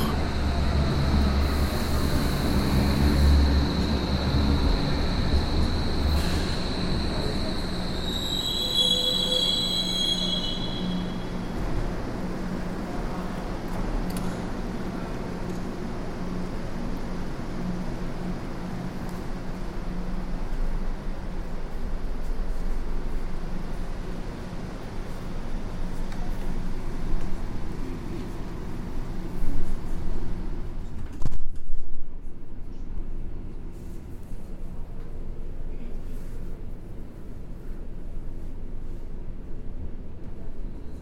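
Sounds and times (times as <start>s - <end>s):
subway train wheels and brakes squealing: 0.0s - 11.5s
subway train in Hamburg rumbling into a station: 0.0s - 41.0s.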